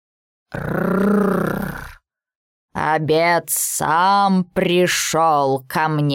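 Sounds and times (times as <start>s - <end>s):
speech: 0.5s - 1.7s, 2.9s - 6.1s
tiger roar sound effect: 0.5s - 2.0s.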